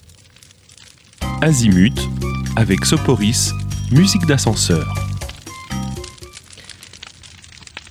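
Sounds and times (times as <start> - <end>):
fire crackling with pops and snaps in a music track: 0.0 - 7.9
low tonal hum: 1.2 - 6.2
speech: 1.4 - 5.1.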